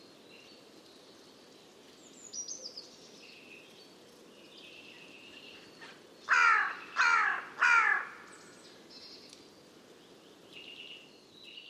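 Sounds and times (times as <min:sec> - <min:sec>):
quiet background hiss: 0:00.0 - 0:11.6
bird giving harsh raspy caws: 0:06.3 - 0:08.4.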